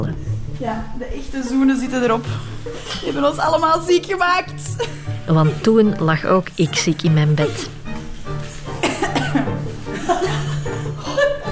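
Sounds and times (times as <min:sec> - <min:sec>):
speech: 0:00.0 - 0:07.8
chuckling: 0:08.8 - 0:11.4
coughing: 0:08.8 - 0:11.4.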